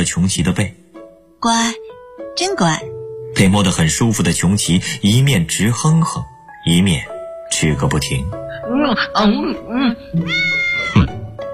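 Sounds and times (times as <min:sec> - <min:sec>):
speech: 0:00.0 - 0:00.8, 0:01.4 - 0:01.8, 0:02.4 - 0:11.1
cat-like meowing from a mythical beast imitating a cat: 0:10.1 - 0:11.2.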